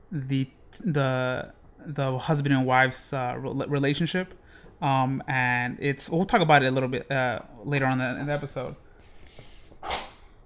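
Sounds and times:
speech: 0.1s - 8.8s
dog sneezing: 9.8s - 10.3s.

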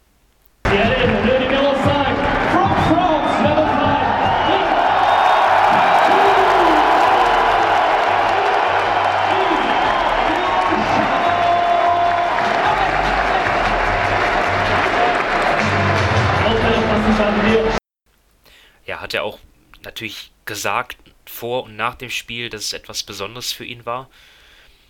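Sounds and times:
large basketball arena crowd cheering and shouting: 0.7s - 17.8s
speech: 20.0s - 24.4s.

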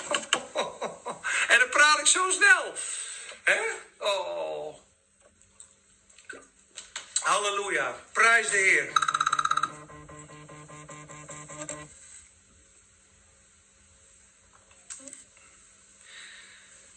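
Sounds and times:
laughter: 0.0s - 1.4s
speech: 2.1s - 4.8s, 7.3s - 9.1s
mobile phone bright electronic ringtone: 8.9s - 11.9s.

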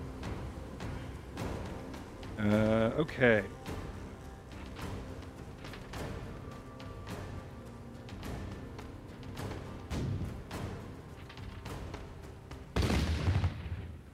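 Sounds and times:
constant rumbling din: 0.0s - 14.1s
speech: 2.4s - 3.8s
warship cannon shots in a video game: 12.8s - 14.0s.

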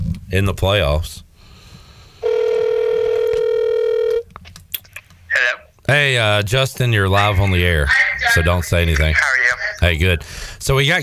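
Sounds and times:
speech: 0.3s - 1.2s, 5.9s - 11.0s
ringback tone from an outgoing phone call: 2.2s - 4.2s.

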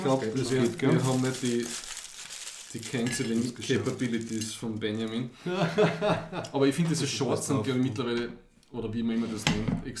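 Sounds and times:
speech: 0.0s - 2.0s, 2.7s - 9.9s
aluminum foil crinkling: 0.0s - 5.2s
laughter: 5.5s - 6.5s.

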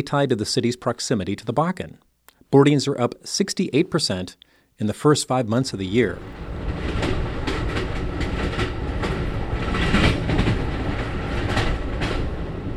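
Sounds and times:
speech: 0.0s - 6.8s
passenger train wheels clattering along rails in the oil patch: 6.2s - 12.7s.

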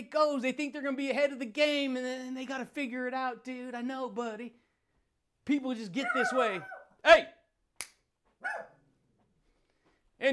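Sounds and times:
speech: 0.0s - 4.6s, 5.5s - 7.4s, 10.2s - 10.3s
small dog barking: 6.0s - 7.0s, 8.4s - 8.8s.

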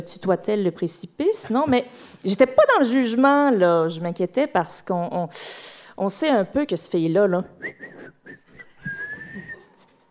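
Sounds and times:
speech: 0.0s - 7.9s
person whistling: 7.6s - 9.9s.

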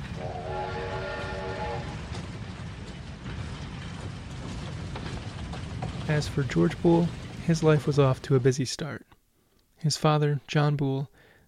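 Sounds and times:
sustained steam locomotive horn blast: 0.0s - 2.2s
steam locomotive rumbling and chugging: 0.0s - 8.9s
speech: 6.1s - 9.1s, 9.8s - 11.1s.

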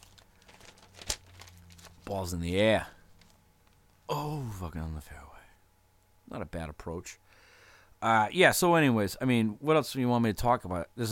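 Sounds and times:
sheet of paper being turned: 0.0s - 2.3s
faint low hum: 0.0s - 11.0s
speech: 2.1s - 3.0s, 4.1s - 5.4s, 6.3s - 7.2s, 8.0s - 11.0s.

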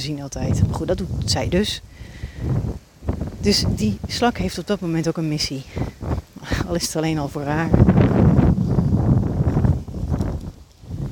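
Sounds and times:
speech: 0.0s - 5.8s, 6.4s - 8.2s
strong wind buffeting the microphone: 0.0s - 11.0s.

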